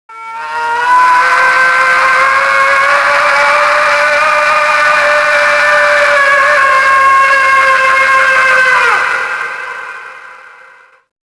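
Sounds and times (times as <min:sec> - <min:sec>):
horror scream: 0:00.1 - 0:11.1.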